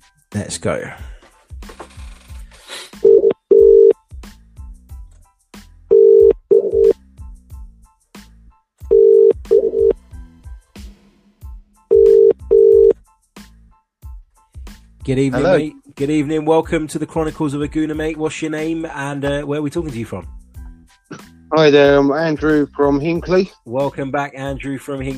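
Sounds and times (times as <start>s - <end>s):
speech: 0.3s - 1.1s, 15.1s - 20.4s, 21.5s - 25.1s
telephone line ringing tone with double rings as a call is placed: 3.0s - 4.0s, 5.9s - 7.0s, 8.9s - 10.0s, 11.9s - 13.0s.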